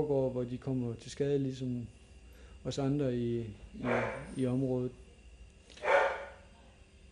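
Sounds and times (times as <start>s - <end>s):
speech: 0.0s - 2.0s, 2.6s - 5.0s
dog barking at a veterinary practice: 3.8s - 4.4s, 5.8s - 6.4s.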